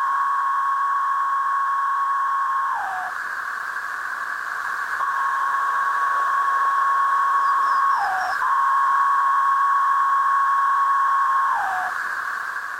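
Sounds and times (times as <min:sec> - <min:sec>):
chorus of male periodical cicadas singing calling and courting songs: 0:00.0 - 0:12.7.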